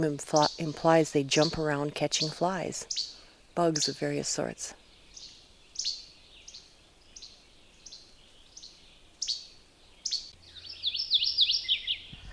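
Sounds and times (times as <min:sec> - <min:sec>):
speech: 0:00.0 - 0:04.8
mourning warbler singing: 0:00.0 - 0:12.3.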